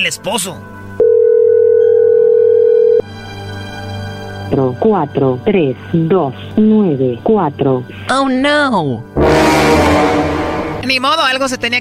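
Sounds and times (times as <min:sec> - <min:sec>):
speech: 0:00.0 - 0:00.8, 0:04.5 - 0:11.8
steady telephone dial tone: 0:01.0 - 0:03.0.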